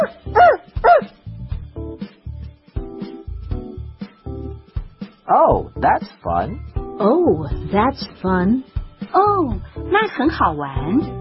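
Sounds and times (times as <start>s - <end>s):
speech: 0.0s - 0.2s, 5.3s - 11.2s
dog barking: 0.0s - 1.2s.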